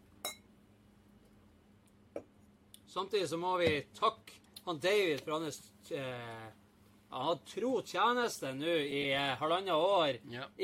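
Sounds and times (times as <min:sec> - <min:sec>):
glasses clinking in a toast: 0:00.2 - 0:00.5
speech: 0:02.9 - 0:10.6.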